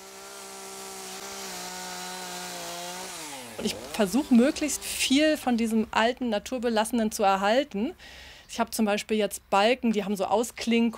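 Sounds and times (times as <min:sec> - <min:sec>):
chainsaw cutting wood for a sculpture: 0:00.0 - 0:05.3
speech: 0:03.6 - 0:10.9.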